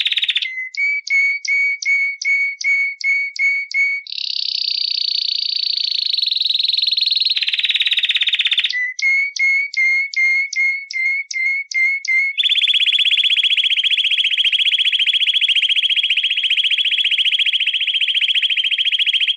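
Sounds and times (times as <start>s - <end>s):
canary singing: 0.0s - 19.3s.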